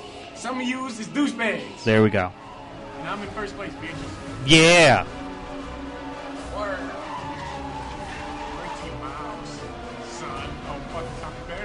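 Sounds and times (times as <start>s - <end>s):
speech: 0.4s - 2.4s, 3.0s - 5.2s
racing car tire squeals in a driving video game: 5.3s - 11.1s.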